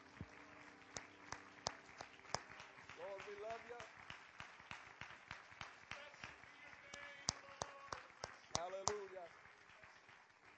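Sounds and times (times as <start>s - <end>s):
crowd clapping hands in applause: 0.0s - 10.5s.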